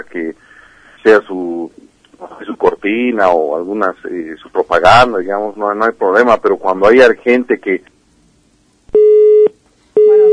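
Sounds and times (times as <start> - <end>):
speech: 2.8 - 7.9
telephone busy tone beeps after a dropped call: 9.0 - 10.3.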